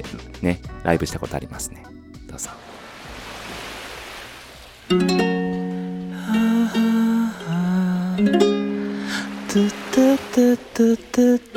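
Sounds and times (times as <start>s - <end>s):
speech: 0.0s - 2.7s, 4.9s - 5.2s, 9.5s - 11.5s
hissing wash of ocean surf: 2.5s - 4.9s, 5.6s - 11.5s.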